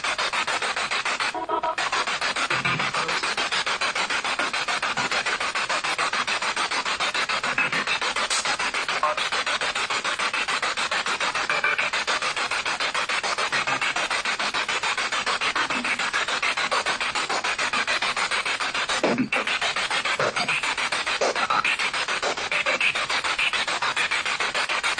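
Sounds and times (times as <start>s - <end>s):
spirit box radio sweep in an apartment living room: 0.0s - 24.9s.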